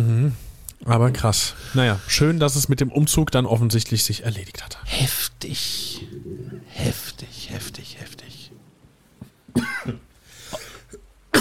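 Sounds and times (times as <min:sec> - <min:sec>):
speech: 0:00.0 - 0:06.1
person coughing after choking on something swallowed the wrong way: 0:09.5 - 0:11.3
throat clearing: 0:09.5 - 0:11.3.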